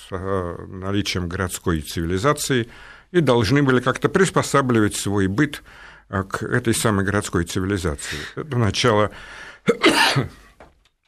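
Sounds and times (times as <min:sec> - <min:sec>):
speech: 0:00.1 - 0:10.4
coughing fit: 0:09.6 - 0:10.6.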